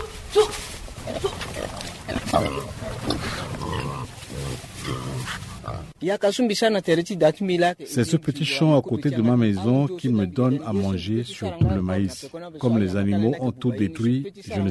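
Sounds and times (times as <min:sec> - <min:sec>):
speech: 0:00.4 - 0:05.4, 0:06.0 - 0:14.6
pigs grunting and snuffling: 0:01.0 - 0:06.0.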